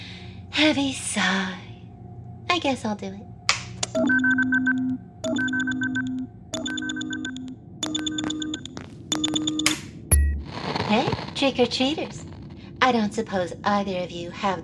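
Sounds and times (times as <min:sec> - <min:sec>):
speech: 0:00.6 - 0:01.6, 0:02.6 - 0:03.3, 0:03.9 - 0:06.0, 0:10.9 - 0:12.2, 0:12.9 - 0:14.6
phone ringing with layered warbling electronic tone: 0:04.0 - 0:09.8.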